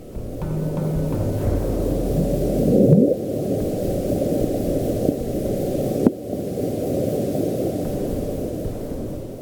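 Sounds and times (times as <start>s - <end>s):
dense low rumbling underwater hiss: 0.0s - 9.4s
rising swelling underwater tone: 0.1s - 5.2s.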